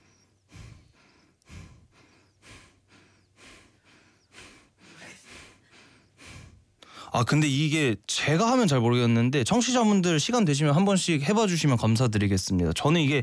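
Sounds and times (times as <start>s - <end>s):
person breathing slowly into the belly and chest: 0.0s - 7.2s
speech: 7.2s - 13.2s.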